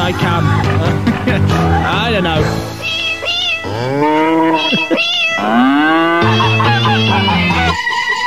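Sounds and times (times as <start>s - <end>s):
laughter: 0.0s - 2.6s, 4.6s - 5.1s, 6.0s - 8.2s
speech: 0.0s - 2.8s, 3.6s - 7.5s
cat meows sung as a rock melody: 2.8s - 7.8s.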